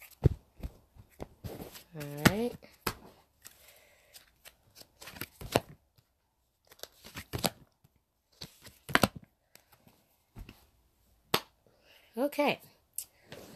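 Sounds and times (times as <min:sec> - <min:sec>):
tarot cards being shuffled: 0:00.0 - 0:10.6
speech: 0:02.0 - 0:02.7, 0:12.3 - 0:12.6.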